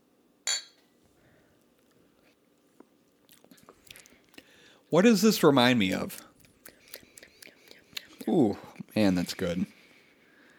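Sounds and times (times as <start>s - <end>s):
beer glasses clinking: 0.4s - 0.8s
soft handling noises: 0.4s - 0.9s
person sipping: 3.3s - 4.8s, 6.1s - 8.9s
speech: 4.9s - 6.3s, 8.4s - 9.8s.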